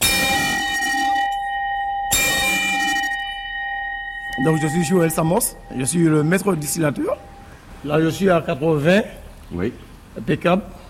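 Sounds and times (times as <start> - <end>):
bell rung to signal distillation start: 0.0 - 8.1
speech: 4.4 - 10.8.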